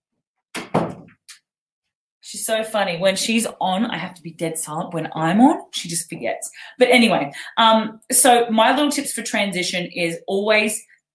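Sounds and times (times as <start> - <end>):
door closing thunk: 0.6 - 1.2
speech: 2.3 - 10.9.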